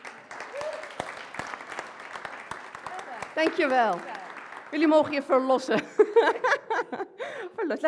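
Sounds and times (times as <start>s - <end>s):
audience applause: 0.0s - 5.5s
speech: 3.4s - 7.8s.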